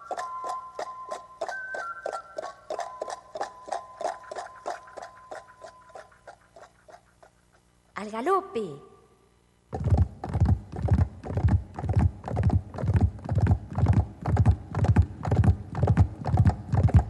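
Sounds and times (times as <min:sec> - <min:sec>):
horse hooves clip-clopping: 0:00.0 - 0:07.6, 0:09.7 - 0:17.0
speech: 0:08.0 - 0:08.9.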